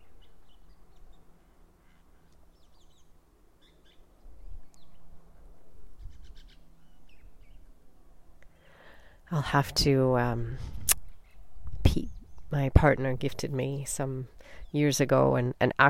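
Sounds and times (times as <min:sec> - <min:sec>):
small birds chirping and tweeting in the distance: 0:00.0 - 0:07.8, 0:11.0 - 0:15.2
steady low rumble of outdoor ambience: 0:00.0 - 0:15.8
speech: 0:09.3 - 0:10.7, 0:12.0 - 0:15.8.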